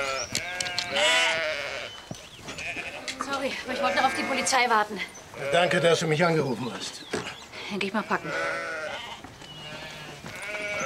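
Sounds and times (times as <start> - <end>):
sheep bleating: 0.0 - 2.0, 2.6 - 6.2, 7.9 - 10.8
speech: 3.4 - 8.7.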